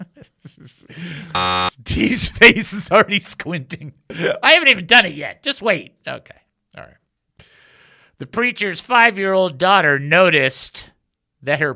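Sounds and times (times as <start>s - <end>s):
speech: 0.6s - 7.0s, 8.2s - 11.7s
loud harsh electronic buzzer sound effect: 1.3s - 1.8s.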